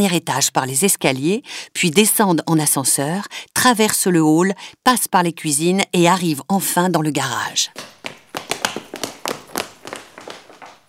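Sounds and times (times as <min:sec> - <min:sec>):
speech: 0:00.0 - 0:08.0
running footsteps of thieves on a hard floor in hotel corridors: 0:07.7 - 0:10.8.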